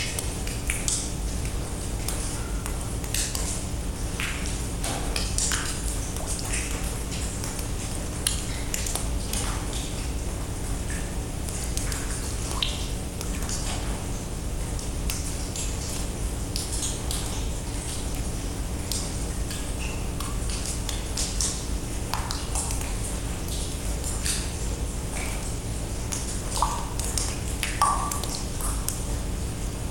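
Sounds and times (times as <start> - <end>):
water drips falling inside a pitch-dark limestone cave: 0.0 - 29.7.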